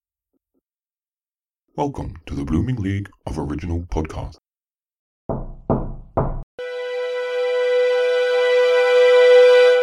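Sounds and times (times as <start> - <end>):
speech: 1.8 - 4.4
firm knocking on a door: 5.3 - 6.5
sustained bright musical tone: 6.6 - 9.8.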